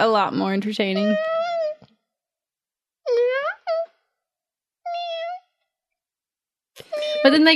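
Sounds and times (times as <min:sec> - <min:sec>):
speech: 0:00.0 - 0:01.3, 0:07.2 - 0:07.5
man imitating a cat meowing: 0:03.1 - 0:03.9, 0:04.9 - 0:05.4.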